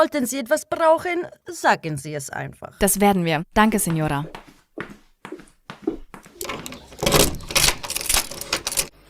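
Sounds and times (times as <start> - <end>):
speech: 0.0 - 5.0
room keys jangling as they are passed between hands: 6.4 - 8.9.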